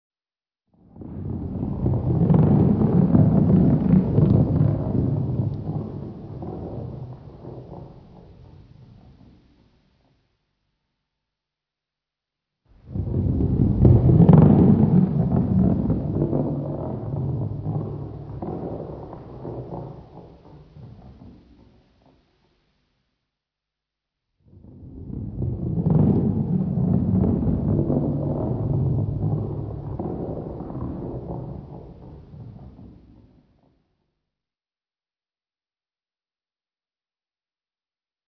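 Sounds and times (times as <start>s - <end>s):
heavy ball rolling: 0.8s - 10.2s, 12.8s - 22.3s, 24.5s - 33.8s.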